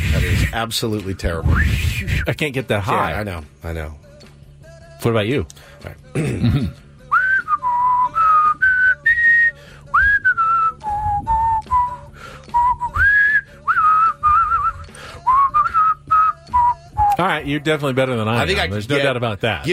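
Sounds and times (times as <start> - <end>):
speech: 0.5 - 4.0, 5.0 - 6.8, 17.2 - 19.7
person whistling a national anthem melody: 1.4 - 2.4, 7.0 - 17.2.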